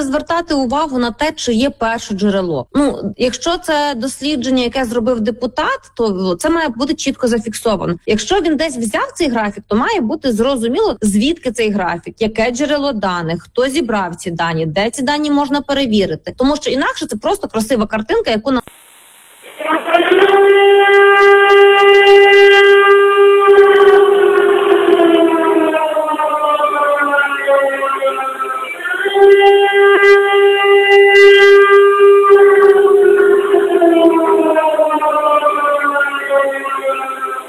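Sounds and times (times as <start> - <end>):
speech: 0.0 - 18.8, 19.6 - 23.0
air raid siren wailing: 18.7 - 37.4.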